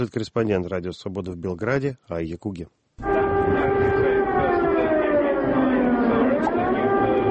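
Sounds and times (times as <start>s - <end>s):
speech: 0.0s - 3.6s
faint noise: 0.0s - 7.3s
air raid siren wailing: 3.0s - 7.3s.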